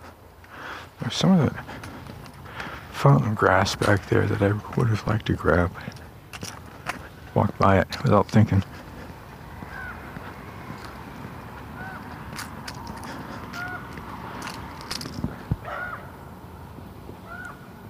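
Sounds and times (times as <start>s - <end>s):
continuous outdoor hum: 0.0s - 17.8s
speech: 1.0s - 1.8s, 3.0s - 6.5s, 7.4s - 8.8s
crow cawing as it flies by: 9.4s - 10.9s, 11.6s - 12.4s, 13.1s - 14.1s, 15.6s - 16.2s, 17.2s - 17.7s.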